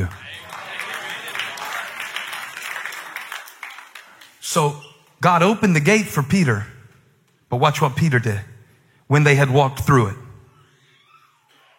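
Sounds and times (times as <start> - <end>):
audience applause: 0.0 - 4.4
speech: 4.5 - 6.7, 7.5 - 8.5, 9.1 - 10.2.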